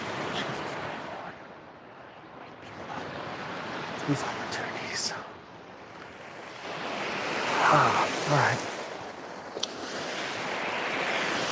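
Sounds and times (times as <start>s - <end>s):
ocean surf washing onto shore: 0.0s - 11.5s
wind buffeting: 0.0s - 11.5s
speech: 4.1s - 5.2s.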